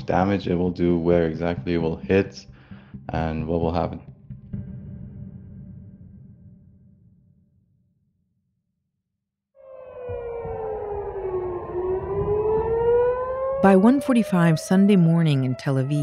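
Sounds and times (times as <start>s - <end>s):
speech: 0.1s - 4.1s, 13.6s - 16.0s
air raid sirens wailing in Tel Aviv during an attack: 9.6s - 16.0s.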